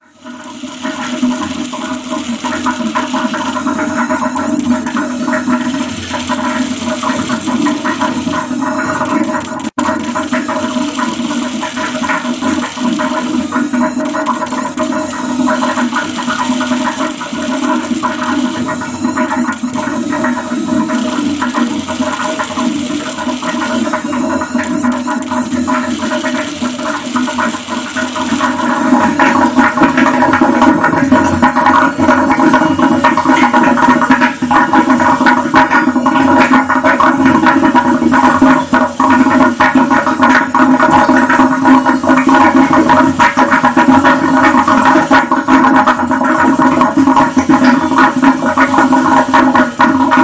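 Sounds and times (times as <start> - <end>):
gurgling in a milk room: 0.3 - 50.2.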